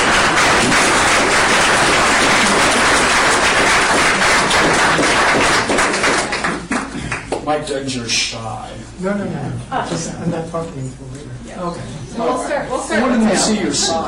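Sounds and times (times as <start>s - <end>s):
crowd applauding: 0.0s - 7.4s
speech: 7.5s - 14.0s.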